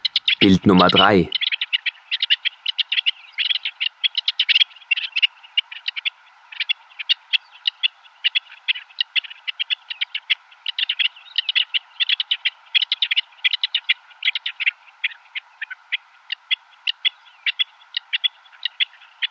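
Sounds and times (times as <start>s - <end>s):
rock partridge singing high scratchy whetting calls: 0.0s - 19.3s
speech: 0.4s - 1.4s.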